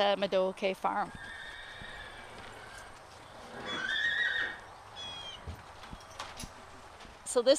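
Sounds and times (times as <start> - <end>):
speech: 0.0 - 1.4, 7.3 - 7.5
outdoor rustling: 0.0 - 7.5
mare whinnying: 1.1 - 5.5
soft thuds: 5.4 - 7.3.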